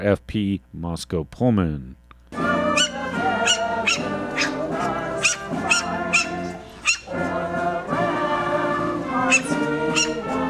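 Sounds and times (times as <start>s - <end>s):
speech: 0.0s - 2.0s
patriotic songs at a Fourth of July dog event: 2.3s - 10.4s
dogs barking at a Fourth of July dog event in Friendship Square, Moscow: 2.6s - 7.5s, 9.1s - 10.4s.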